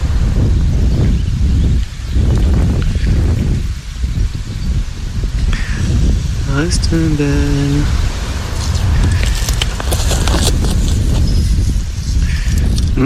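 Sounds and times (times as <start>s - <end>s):
loud blustery wind buffeting the microphone outdoors: 0.0s - 13.0s
speech: 6.6s - 8.1s
faint rustling: 7.9s - 12.9s.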